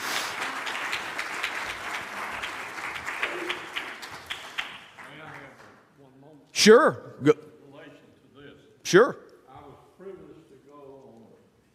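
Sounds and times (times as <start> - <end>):
crowd applauding in a reverberant church: 0.0 - 5.8
speech: 6.6 - 7.4, 8.9 - 9.2.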